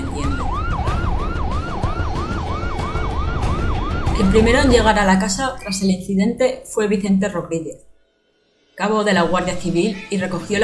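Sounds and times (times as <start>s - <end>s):
ambulance siren wailing on the way to the hospital: 0.0s - 5.7s
speech: 4.2s - 7.9s, 8.8s - 10.6s.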